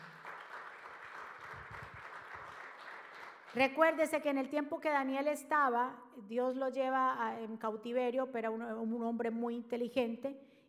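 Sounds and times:
audience applauding loudly: 0.0s - 3.6s
speech: 3.6s - 10.6s.

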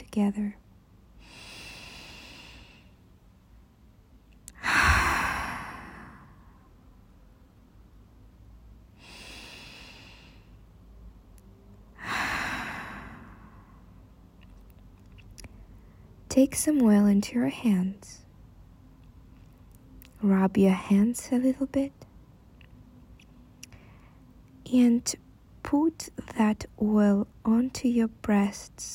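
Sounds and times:
speech: 0.2s - 0.6s, 16.4s - 18.2s, 20.2s - 22.0s, 24.7s - 28.9s
slow deep breaths during a guided relaxation and massage practice: 1.2s - 3.0s, 4.5s - 6.7s, 9.0s - 10.7s, 12.0s - 14.0s, 23.7s - 24.3s.

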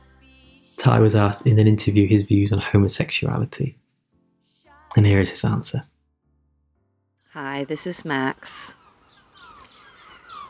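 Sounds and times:
speech: 0.8s - 3.8s, 5.0s - 5.9s, 7.4s - 8.8s
seagulls calling on a sunny day in Inverness Scotland: 7.4s - 10.4s.

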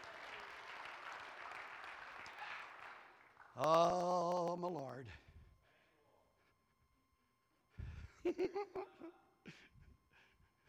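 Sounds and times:
congregation applauding: 0.0s - 4.5s
speech: 3.6s - 5.3s, 8.2s - 9.6s.

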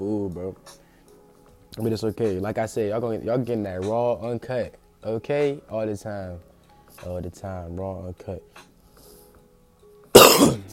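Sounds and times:
speech: 0.0s - 0.9s, 1.8s - 8.7s
person coughing: 10.2s - 10.7s.

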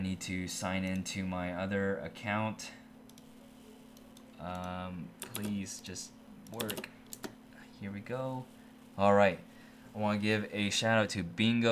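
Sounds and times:
speech: 0.0s - 2.8s, 4.4s - 7.0s, 7.8s - 11.6s
computer keyboard keystrokes: 4.0s - 5.6s, 6.5s - 7.4s.

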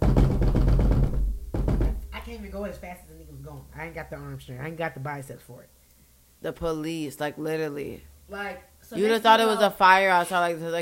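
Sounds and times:
fast knocking imitating violent pounding on door: 0.0s - 2.4s
speech: 2.6s - 5.8s, 6.4s - 10.8s.

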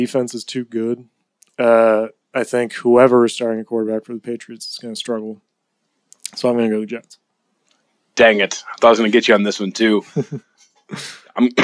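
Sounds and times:
speech: 0.0s - 5.5s, 6.3s - 7.2s, 8.2s - 11.6s
person coughing harshly: 10.9s - 11.6s.

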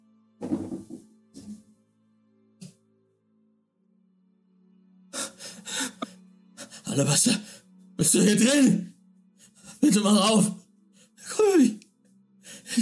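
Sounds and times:
heavy gasping breaths: 5.2s - 7.6s
speech: 7.0s - 8.9s, 9.9s - 10.6s.

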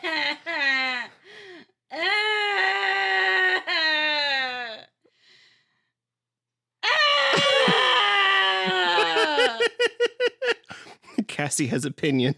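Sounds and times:
person screaming, crying and laughing: 1.9s - 4.9s, 6.8s - 10.0s
laughter: 8.5s - 11.3s
speech: 11.5s - 12.3s.

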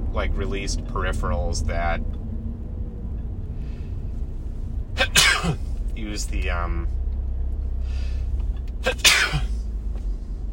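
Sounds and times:
low steady hum: 0.0s - 10.5s
speech: 0.1s - 2.2s, 5.4s - 7.0s, 8.8s - 9.5s
person sneezing: 5.0s - 5.6s, 8.8s - 9.6s.

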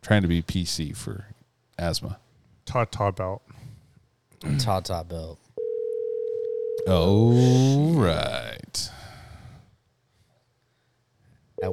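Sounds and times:
speech: 0.0s - 3.7s, 4.4s - 5.4s, 6.8s - 8.9s
phone dial tone as a phone call is placed: 5.6s - 6.9s.

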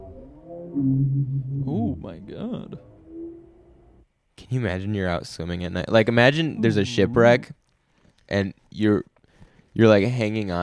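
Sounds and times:
bowhead whale moaning call: 0.0s - 4.1s, 6.5s - 7.5s
speech: 0.7s - 3.0s, 4.5s - 7.6s, 8.3s - 9.1s, 9.8s - 10.6s.

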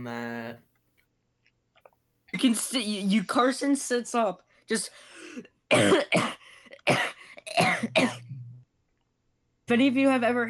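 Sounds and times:
speech: 0.0s - 0.7s, 2.3s - 8.2s, 9.7s - 10.4s
person coughing harshly after sitting up: 5.7s - 8.4s.

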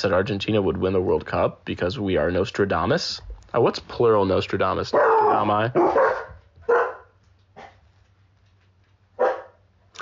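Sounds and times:
speech: 0.0s - 6.8s
dog barking: 4.9s - 7.8s, 9.2s - 9.7s.

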